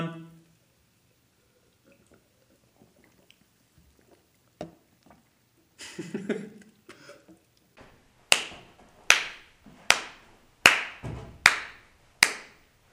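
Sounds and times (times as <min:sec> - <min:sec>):
speech: 0:06.0 - 0:06.6
hand claps for microphone sync: 0:08.3 - 0:12.6.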